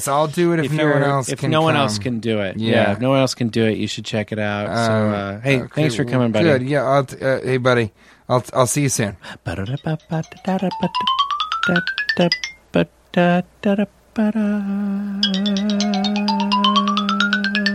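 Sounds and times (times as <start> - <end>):
speech: 0.0 - 16.9
telephone ringing with a melodic ringtone: 9.8 - 12.6, 15.2 - 17.7.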